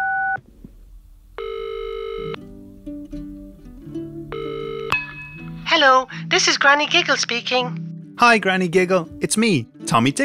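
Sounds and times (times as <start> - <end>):
long bright electronic telephone ringing tones: 1.4 - 2.4, 4.3 - 5.0
bouncy lower melody: 1.4 - 10.2
speech: 5.8 - 10.2.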